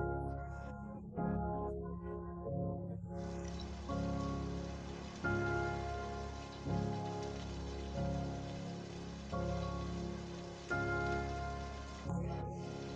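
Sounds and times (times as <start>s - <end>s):
soft sustained musical chords: 0.0s - 12.9s
rain pattering and hissing: 3.2s - 12.9s.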